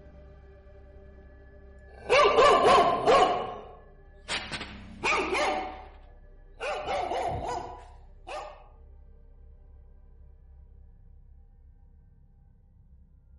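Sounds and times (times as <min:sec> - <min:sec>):
dogs barking loudly from a house in an alley: 0:02.0 - 0:03.8, 0:05.0 - 0:05.9, 0:06.6 - 0:08.6.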